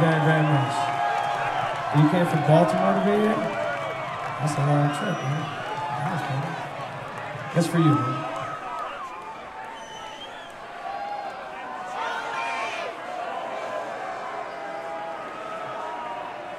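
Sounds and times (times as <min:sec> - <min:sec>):
live audience booing: 0:00.0 - 0:16.5
speech: 0:01.9 - 0:03.6, 0:04.4 - 0:06.7, 0:07.6 - 0:08.2.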